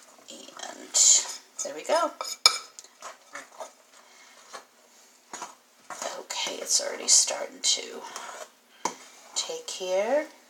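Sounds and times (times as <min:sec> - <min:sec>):
fork stirring a mixture in a container: 0:00.0 - 0:04.7, 0:08.0 - 0:08.5
speech: 0:01.8 - 0:02.4, 0:06.6 - 0:08.4, 0:09.5 - 0:10.4.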